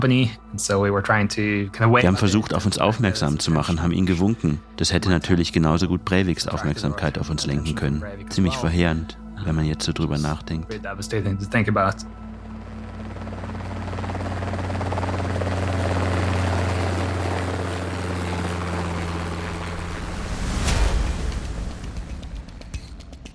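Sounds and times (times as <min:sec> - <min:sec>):
speech: 0:00.0 - 0:12.2
helicopter rotor thrum flying overhead: 0:12.3 - 0:23.3.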